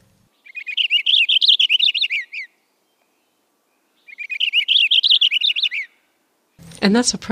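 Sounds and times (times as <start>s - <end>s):
purple finch song: 0.3s - 6.0s
speech: 6.8s - 7.3s.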